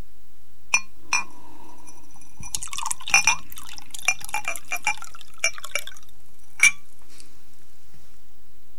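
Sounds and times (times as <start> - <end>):
glassy clinks: 0.8 - 6.0, 6.6 - 6.8
drink pouring into a glass: 1.2 - 6.7.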